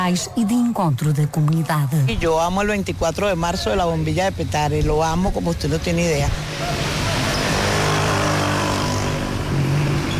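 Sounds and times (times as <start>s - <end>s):
speech: 0.0s - 7.0s
dense late-afternoon road traffic in Caracas Venezuela: 0.0s - 10.1s
motorcycle revving: 2.3s - 10.1s.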